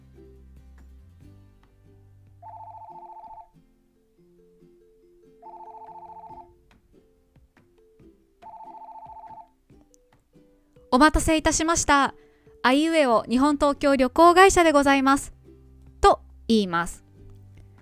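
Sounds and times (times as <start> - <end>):
soft music bed: 0.0 - 17.8
telephone ringing with bright trilling bursts: 2.4 - 3.5, 5.4 - 6.6, 8.4 - 9.6
speech: 10.9 - 15.4, 16.0 - 17.0.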